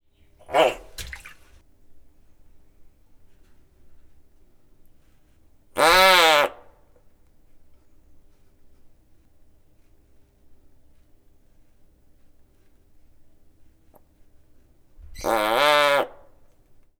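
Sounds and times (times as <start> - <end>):
bullfrog calling: 0.5 - 1.3, 5.8 - 6.6, 15.2 - 16.2.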